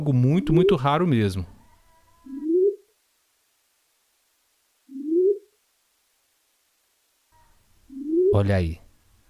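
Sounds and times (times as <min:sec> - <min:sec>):
speech: 0:00.0 - 0:01.6, 0:08.3 - 0:08.8
faint hum of old VHS tape recording: 0:00.0 - 0:09.2
purple-winged ground dove giving soft low upward-sliding coos: 0:02.2 - 0:02.9, 0:04.9 - 0:05.6, 0:07.9 - 0:08.4.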